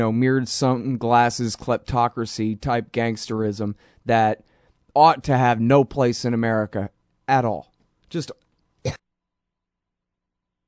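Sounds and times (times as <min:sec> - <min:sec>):
speech: 0:00.0 - 0:09.0
person coughing: 0:08.8 - 0:09.1.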